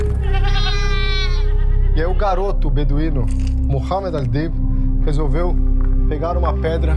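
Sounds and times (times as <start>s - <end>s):
goat bleating with a long quavering cry: 0.2s - 1.9s
speech: 2.2s - 6.9s.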